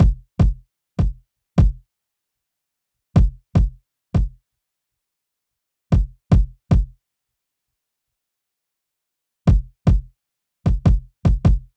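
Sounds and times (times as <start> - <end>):
kick drum after EQ: 0.0 - 1.8, 3.2 - 4.4, 5.9 - 7.0, 9.5 - 10.1, 10.7 - 11.7.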